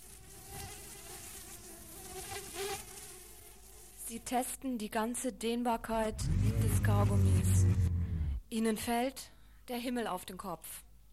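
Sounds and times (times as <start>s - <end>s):
housefly buzzing: 0.0s - 4.0s, 5.8s - 8.4s
speech: 4.1s - 7.8s, 8.5s - 10.9s.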